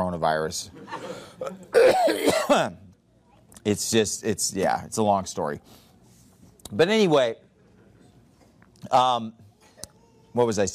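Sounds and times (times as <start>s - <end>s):
speech: 0.1s - 2.8s, 3.6s - 5.8s, 6.7s - 7.4s, 8.8s - 9.4s, 10.3s - 10.7s
person coughing: 1.0s - 2.8s
throat clearing: 1.4s - 2.7s.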